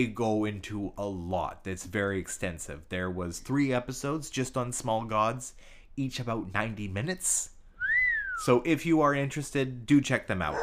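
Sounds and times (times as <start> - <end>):
speech: 0.0 - 7.5, 8.4 - 10.6
person whistling: 7.8 - 8.5.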